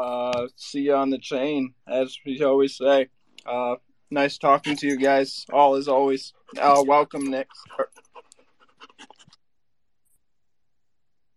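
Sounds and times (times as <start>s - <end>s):
speech: 0.0s - 8.0s
dog panting: 6.3s - 9.4s
laughter: 6.5s - 8.2s.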